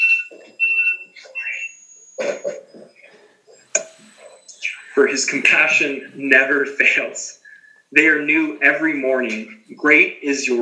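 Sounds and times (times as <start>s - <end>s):
electronic alarm beeping: 0.0s - 6.2s
person clearing throat: 2.2s - 3.0s
speech: 5.0s - 10.6s.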